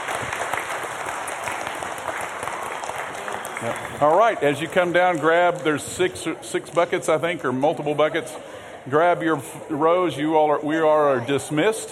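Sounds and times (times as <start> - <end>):
audience applause for a group of women: 0.0 - 6.1
speech: 3.6 - 11.9.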